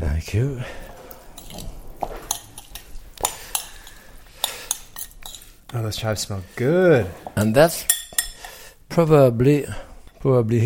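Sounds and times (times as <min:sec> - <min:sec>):
speech: 0:00.2 - 0:00.9, 0:05.7 - 0:08.0, 0:09.0 - 0:10.6
metal spoon scooping food and clinking against a pan in home cooking: 0:00.8 - 0:08.8.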